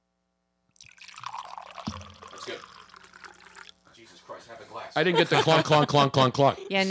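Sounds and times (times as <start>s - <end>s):
wine pouring into a glass: 0.8s - 3.8s
speech: 4.3s - 6.8s
laughter: 4.9s - 6.8s.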